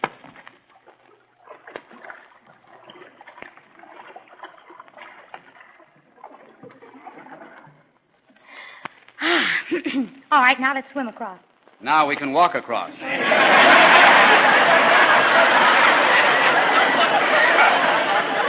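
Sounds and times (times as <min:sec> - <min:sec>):
water splashing and lapping in a stream: 0:00.0 - 0:08.4
speech: 0:09.8 - 0:14.0
laughter: 0:13.0 - 0:18.4.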